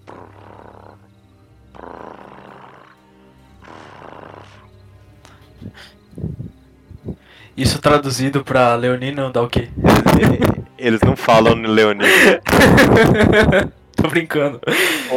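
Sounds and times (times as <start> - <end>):
voice imitating cats purring: 0.0 - 1.1, 1.7 - 3.0, 3.6 - 4.7
laughter: 5.3 - 6.0, 9.9 - 10.7, 12.0 - 13.7
speech: 7.6 - 15.1.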